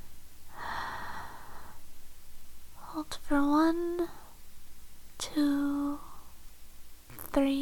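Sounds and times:
deep slow breath: 0:00.5 - 0:01.9
speech: 0:03.0 - 0:04.2, 0:05.3 - 0:05.7, 0:07.4 - 0:07.6.

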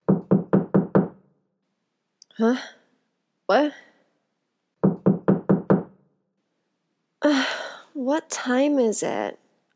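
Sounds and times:
knocking on a door: 0:00.0 - 0:01.2, 0:04.8 - 0:06.0
speech: 0:02.4 - 0:02.8, 0:03.5 - 0:03.9, 0:07.2 - 0:09.4.

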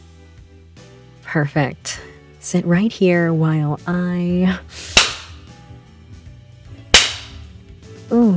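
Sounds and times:
speech: 0:01.3 - 0:05.0
whip strikes on bare buttocks as a whip is tested: 0:04.8 - 0:05.4, 0:06.9 - 0:07.5.

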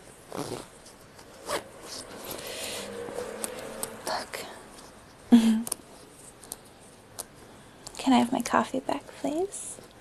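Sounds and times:
fabric rustling: 0:00.0 - 0:08.0
clothing zipper being pulled: 0:00.2 - 0:04.9
speech: 0:00.3 - 0:00.8, 0:08.1 - 0:09.9.

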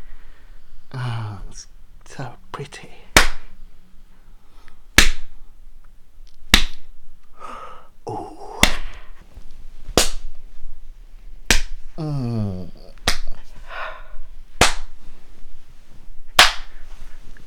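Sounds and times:
person moaning: 0:00.9 - 0:01.7, 0:07.4 - 0:09.2, 0:11.9 - 0:13.0
speech: 0:01.6 - 0:03.0
hand spanking slaps on bare skin: 0:03.1 - 0:03.6, 0:05.0 - 0:05.3, 0:06.5 - 0:06.9, 0:08.6 - 0:09.0, 0:09.9 - 0:10.3, 0:11.4 - 0:11.8, 0:13.0 - 0:13.4, 0:14.6 - 0:15.0, 0:16.3 - 0:16.8.

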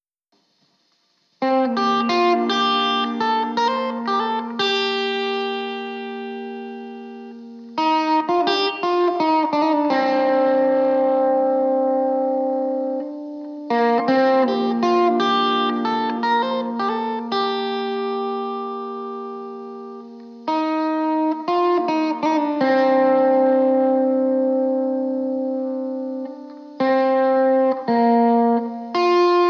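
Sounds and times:
guitar playing: 0:01.4 - 0:29.4.

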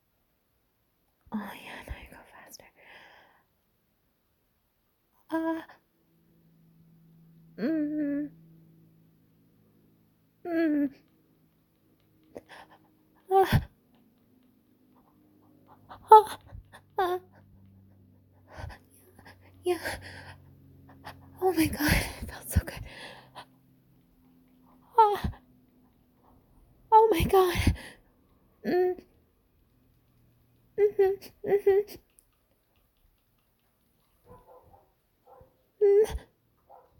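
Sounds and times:
faint low hum: 0:00.0 - 0:36.9
dog panting: 0:11.0 - 0:26.7, 0:31.8 - 0:35.8, 0:36.6 - 0:36.9.

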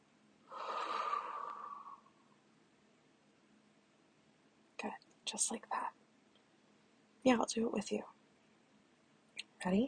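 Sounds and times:
person inhaling through the nose and breathing out: 0:00.5 - 0:02.2
speech: 0:04.8 - 0:06.0, 0:07.2 - 0:08.2, 0:09.6 - 0:09.8.

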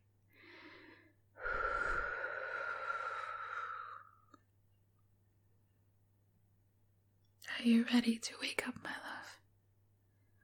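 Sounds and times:
person breathing out in a long exhale: 0:00.4 - 0:04.3
speech: 0:07.6 - 0:09.4.

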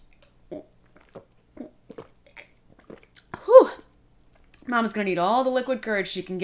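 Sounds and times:
wet gulping of a cocktail being swallowed: 0:00.0 - 0:04.7
speech: 0:04.7 - 0:06.4.

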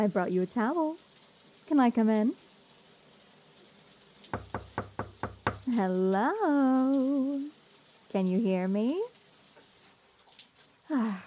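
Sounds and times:
speech: 0:00.0 - 0:01.0, 0:01.7 - 0:02.4, 0:05.7 - 0:09.1, 0:10.9 - 0:11.2
hiss: 0:00.0 - 0:11.2
knocking on a door: 0:04.4 - 0:05.7.

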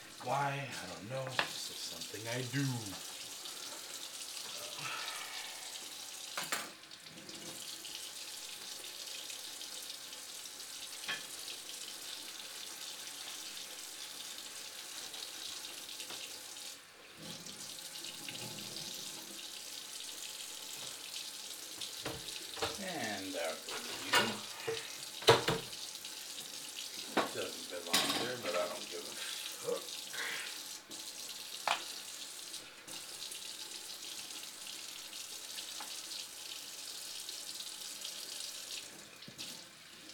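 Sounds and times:
tap water running into a sink during cleaning: 0:00.0 - 0:40.1
speech: 0:00.2 - 0:03.1.

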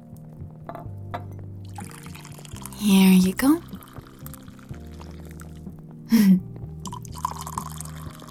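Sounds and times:
coffee from a freshly made pot pouring into a cup: 0:01.6 - 0:05.7, 0:06.8 - 0:08.2
speech: 0:02.8 - 0:03.7.

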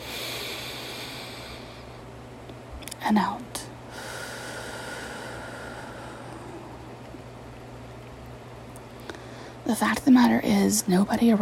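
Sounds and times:
slow deep inhalation during a guided breathing exercise: 0:00.0 - 0:02.0, 0:03.9 - 0:06.6, 0:09.1 - 0:09.6
speech: 0:03.0 - 0:03.7, 0:09.7 - 0:11.4.

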